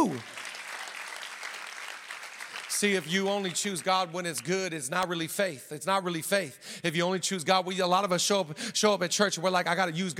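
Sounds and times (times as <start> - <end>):
speech: 0.0 - 0.4, 2.8 - 10.1
large group applauding: 0.0 - 4.5.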